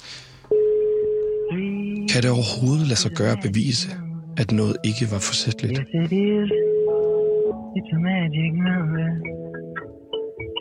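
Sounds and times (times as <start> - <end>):
electronic phone ringback tone of an outgoing call: 0.5 - 1.7, 6.5 - 7.6
speech: 2.1 - 6.7, 7.7 - 9.6.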